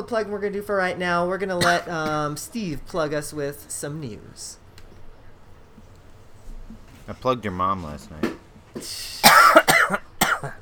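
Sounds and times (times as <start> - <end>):
speech: 0.0 - 4.6, 7.1 - 9.6
person coughing harshly: 1.6 - 2.2, 8.8 - 10.6.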